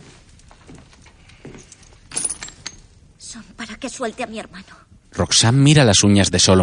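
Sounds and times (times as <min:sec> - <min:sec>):
copper coins clinking on a table: 0:01.8 - 0:02.9
speech: 0:03.3 - 0:06.6.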